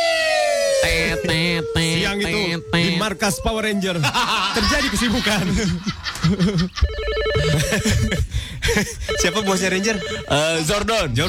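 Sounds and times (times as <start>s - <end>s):
speech: 0.8s - 11.2s
laughter: 0.9s - 2.3s, 3.7s - 9.0s
loud steady ringing alarm tone: 6.8s - 8.3s, 9.0s - 10.7s.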